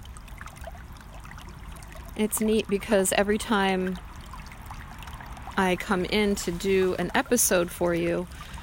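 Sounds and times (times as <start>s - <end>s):
creek water babbling: 0.0s - 8.6s
speech: 2.2s - 4.1s, 5.6s - 8.6s.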